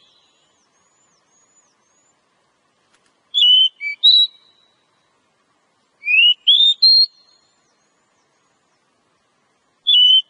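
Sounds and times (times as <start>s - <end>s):
Oriental magpie-robin lure call whistles: 3.3s - 4.8s, 6.0s - 7.4s, 9.9s - 10.2s.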